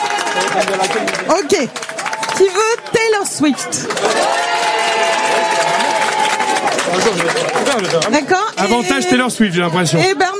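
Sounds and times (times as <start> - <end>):
crowd cheering to vote for a song: 0.0 - 10.3
speech: 0.4 - 6.0, 6.6 - 10.3.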